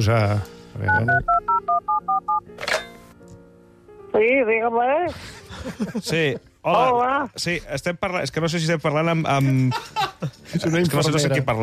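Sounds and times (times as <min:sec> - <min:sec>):
speech: 0:00.0 - 0:03.0, 0:04.1 - 0:11.6
touch-tone telephone dialing beeps: 0:00.9 - 0:02.4
laughter: 0:05.2 - 0:06.4, 0:09.4 - 0:10.7.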